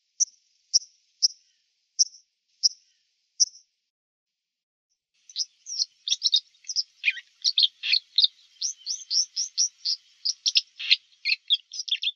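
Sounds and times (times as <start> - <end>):
white-throated dipper Cinclus cinclus: 5.3 - 12.1.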